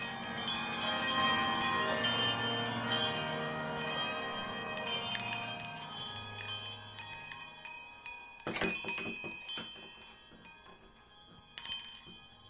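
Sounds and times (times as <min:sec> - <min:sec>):
string of small tinkling alarm bells around a pumpkin patch: 0:00.0 - 0:12.4.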